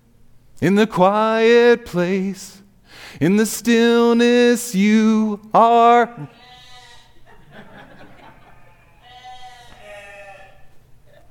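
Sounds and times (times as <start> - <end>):
speech: 0.6 - 6.4
sheep bleating: 6.3 - 7.2, 8.6 - 10.8
laughter: 7.3 - 9.0.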